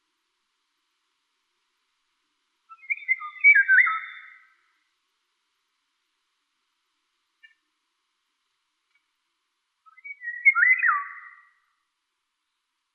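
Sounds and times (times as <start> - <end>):
Eurasian golden oriole Oriolus oriolus song: 2.6 - 5.0, 7.3 - 7.8, 9.7 - 12.9.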